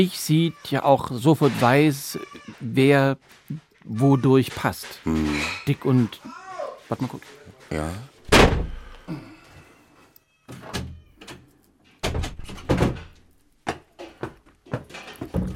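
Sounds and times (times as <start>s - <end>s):
speech: 0.0s - 8.1s
door pushed shut with a loud wooden thunk: 8.3s - 8.9s, 12.0s - 13.2s, 15.1s - 15.5s.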